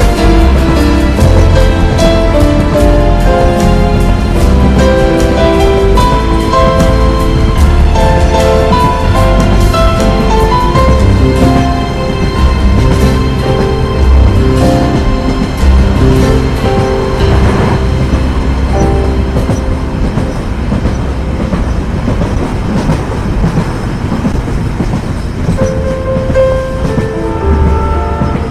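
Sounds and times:
heavy low rumble: 0.0s - 22.4s
train running along chugging and clattering: 0.0s - 28.4s.

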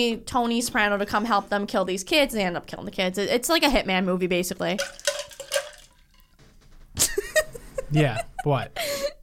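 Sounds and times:
speech: 0.0s - 5.2s, 7.9s - 9.0s
drink splashing onto table: 4.8s - 6.3s.

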